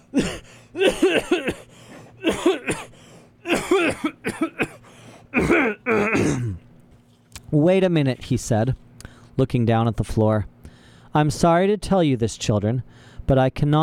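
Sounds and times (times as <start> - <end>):
man coughing in rough voiced hacks: 0.0 - 6.7
speech: 7.6 - 10.5, 11.1 - 13.8.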